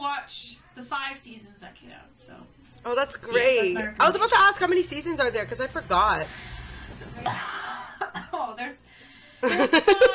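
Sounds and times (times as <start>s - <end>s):
speech: 0.2s - 6.6s, 7.2s - 7.5s, 8.4s - 10.1s
person coughing: 7.2s - 8.4s
laughter: 9.4s - 10.1s.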